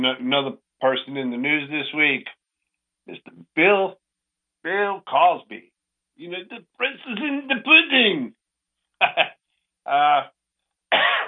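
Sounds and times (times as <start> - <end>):
speech: 0.0 - 2.4, 3.1 - 4.0, 4.6 - 8.4, 9.0 - 11.2
laughter: 3.1 - 3.8, 4.7 - 5.6, 6.3 - 8.2, 9.0 - 9.3, 9.9 - 10.2
person coughing from sinusitis during heavy pollen in Middle Tennessee: 9.0 - 9.2, 10.9 - 11.2.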